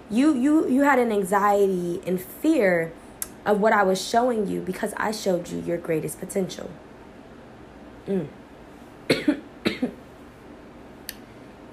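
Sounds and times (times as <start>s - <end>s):
speech: 0.1s - 6.8s, 8.0s - 8.4s, 9.1s - 9.4s
short coughing fit: 8.1s - 8.3s, 9.1s - 10.0s.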